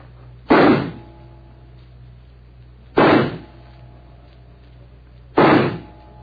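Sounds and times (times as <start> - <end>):
pistol shots fired at a target: 0.5 - 1.0, 3.0 - 3.5, 5.4 - 6.0.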